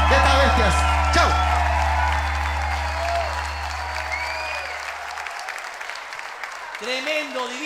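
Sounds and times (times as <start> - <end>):
low hum: 0.0 - 5.1
audience applause for performers at a live show: 0.0 - 7.6.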